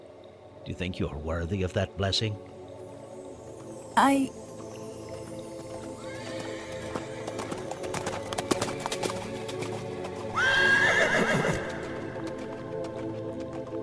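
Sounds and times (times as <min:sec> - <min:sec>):
speech: 0:00.7 - 0:02.6, 0:04.0 - 0:04.4
horse hooves clopping: 0:05.0 - 0:13.8
horse whinnying: 0:10.3 - 0:12.1.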